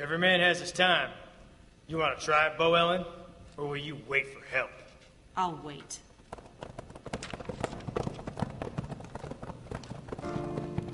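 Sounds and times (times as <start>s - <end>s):
speech: 0.0s - 1.2s, 1.9s - 4.8s, 5.4s - 6.1s
several horses' hooves clip-clopping on a hard street: 6.2s - 10.9s.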